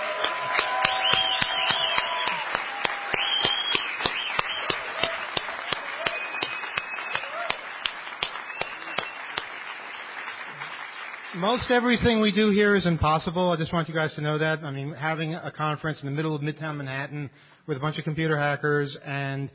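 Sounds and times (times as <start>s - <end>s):
audience at a computer hacker conference in Midtown Manhattan applauding: 0.0s - 12.3s
speech: 11.4s - 19.5s.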